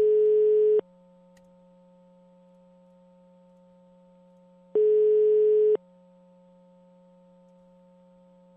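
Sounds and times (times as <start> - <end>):
telephone ringback tone on an outgoing call: 0.0 - 0.8, 4.8 - 5.8.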